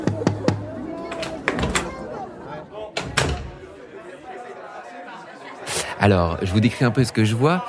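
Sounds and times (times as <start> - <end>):
musicians, singers and orchestra and choir staff chattering around a buffet: 0.0 - 7.6
door to backstage dressing rooms clunking open: 1.1 - 2.0, 3.0 - 3.6
speech: 6.0 - 7.6.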